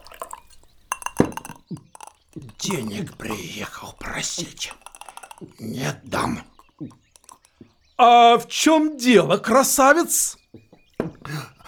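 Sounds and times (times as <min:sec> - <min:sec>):
drinking glass clinking: 0:00.0 - 0:08.0
water poured into a drinking glass: 0:00.0 - 0:08.2
speech: 0:02.6 - 0:04.8, 0:05.4 - 0:07.0, 0:08.0 - 0:10.4.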